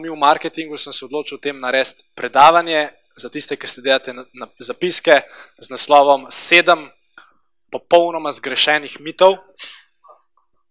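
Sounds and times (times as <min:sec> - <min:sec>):
speech: 0:00.0 - 0:07.0, 0:07.7 - 0:09.8
person sneezing during a lecture: 0:09.6 - 0:10.2
person sniffing: 0:09.6 - 0:10.2.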